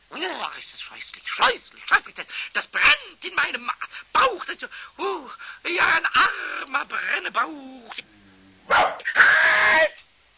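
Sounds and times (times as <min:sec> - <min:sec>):
speech: 0:00.2 - 0:10.0
large dog barking in a workshop: 0:08.7 - 0:09.1.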